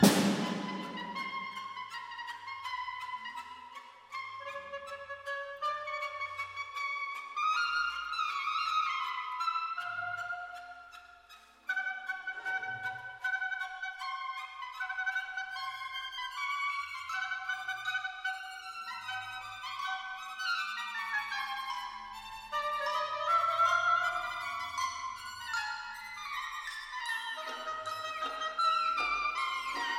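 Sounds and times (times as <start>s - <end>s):
orchestra playing a concerto: 0.0s - 1.6s
harp in a concerto: 0.0s - 29.9s
oboe in a concerto: 0.0s - 29.9s.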